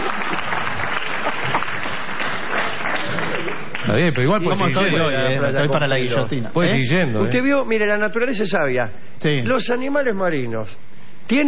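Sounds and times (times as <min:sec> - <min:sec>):
audience applause: 0:00.0 - 0:04.0
speech: 0:04.0 - 0:11.4.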